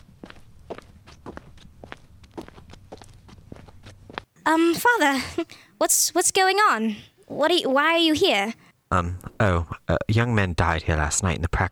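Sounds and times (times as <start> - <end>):
footsteps of a woman walking up to a priest: 0.0 - 5.1
speech: 4.5 - 11.7.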